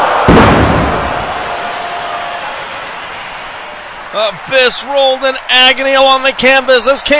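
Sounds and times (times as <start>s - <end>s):
body slammed into glass: 0.0s - 1.8s
speech: 4.2s - 7.1s.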